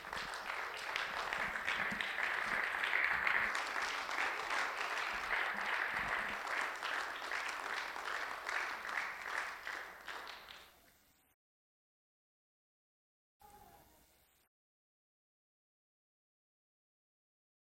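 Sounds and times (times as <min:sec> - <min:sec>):
large church audience applauding in a standing ovation: 0:00.0 - 0:10.9.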